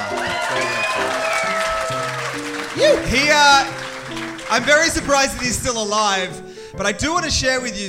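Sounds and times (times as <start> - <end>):
loud whoops and cheers: 0.0 - 3.3
audience applauding: 0.0 - 6.1
speech: 4.5 - 7.8.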